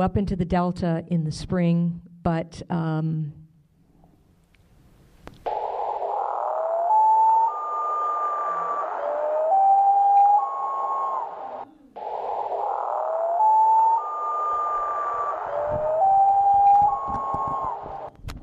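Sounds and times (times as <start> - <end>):
speech: 0.0 - 3.4
common loon wailing in the Delta in spring: 5.5 - 18.1.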